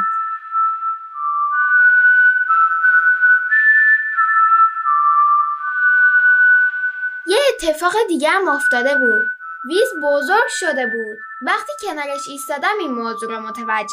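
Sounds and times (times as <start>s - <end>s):
gentle whistled melody with long sustained gliding notes: 0.0s - 13.9s
speech: 7.6s - 13.9s.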